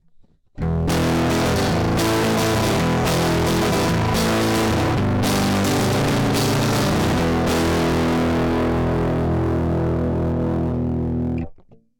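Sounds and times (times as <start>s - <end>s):
electric guitar recorded direct: 0.6s - 11.8s.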